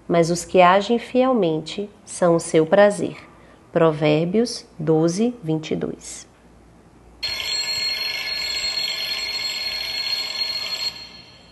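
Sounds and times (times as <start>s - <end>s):
speech: 0.1s - 6.3s
alarm clock ringing: 7.2s - 11.5s.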